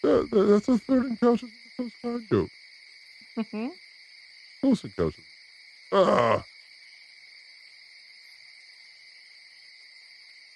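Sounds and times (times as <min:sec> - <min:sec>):
short low groan-like voice: 0:00.0 - 0:02.5, 0:05.9 - 0:06.4
speech: 0:00.0 - 0:02.6, 0:03.4 - 0:03.8, 0:04.6 - 0:05.3, 0:05.9 - 0:06.5
crickets chirping: 0:00.0 - 0:10.5.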